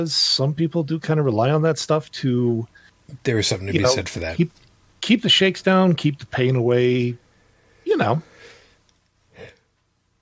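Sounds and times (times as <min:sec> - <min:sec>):
speech: 0:00.0 - 0:07.2, 0:08.0 - 0:08.3
short breathy yawn: 0:09.4 - 0:09.6.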